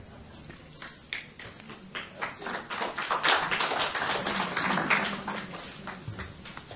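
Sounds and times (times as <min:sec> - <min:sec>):
audience applause after a talk: 0:01.4 - 0:06.7.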